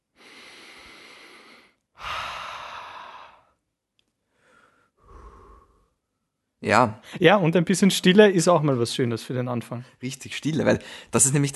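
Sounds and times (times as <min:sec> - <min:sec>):
deep breath in and out with a long sigh: 0:00.0 - 0:03.6, 0:04.2 - 0:06.3, 0:10.8 - 0:11.2
speech: 0:06.6 - 0:11.5.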